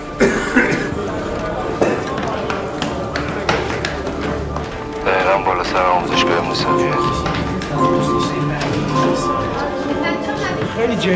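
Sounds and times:
faint voices: 0.0s - 11.1s
person coughing: 0.2s - 1.0s
speech: 10.8s - 11.1s.

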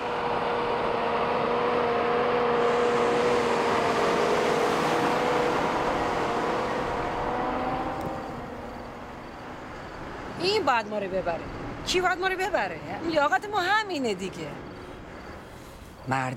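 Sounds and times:
large municipal truck engine roar driving past: 0.0s - 12.1s
speech: 10.5s - 14.7s, 16.0s - 16.3s.

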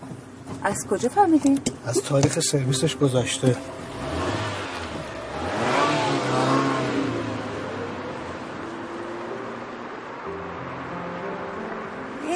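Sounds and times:
speech: 0.6s - 4.2s
car engine revving while accelerating: 3.3s - 10.9s.

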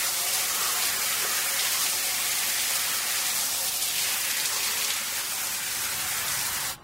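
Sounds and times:
running shower water spraying: 0.0s - 6.8s.

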